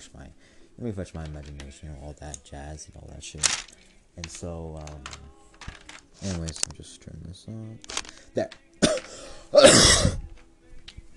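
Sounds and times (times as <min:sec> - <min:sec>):
speech: 0:00.0 - 0:08.6
loud harsh raspy cough: 0:08.8 - 0:10.2.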